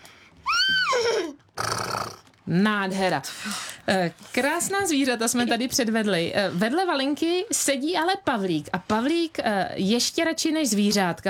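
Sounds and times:
child imitating a horse neighing: 0:00.4 - 0:02.2
breathy snort-like burst from a child: 0:01.2 - 0:02.3
speech: 0:02.5 - 0:11.2.

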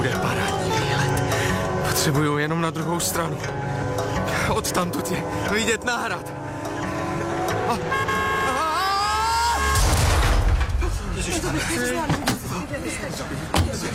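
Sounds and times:
street noise: 0:00.0 - 0:13.9
speech: 0:02.0 - 0:03.9, 0:04.5 - 0:06.4, 0:07.7 - 0:08.2, 0:11.2 - 0:13.9
car horn blaring: 0:07.0 - 0:10.0.

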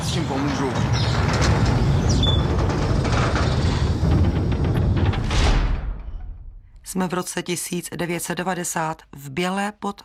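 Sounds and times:
heavy gate doors of an abandoned control room grinding open: 0:00.0 - 0:06.6
speech: 0:00.2 - 0:00.8, 0:06.9 - 0:10.0.

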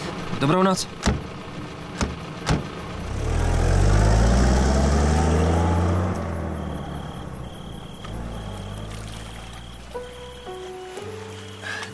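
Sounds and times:
car engine rumbling up and idling: 0:00.0 - 0:11.9
speech: 0:00.4 - 0:01.2
sharp knocks: 0:01.0 - 0:02.8.

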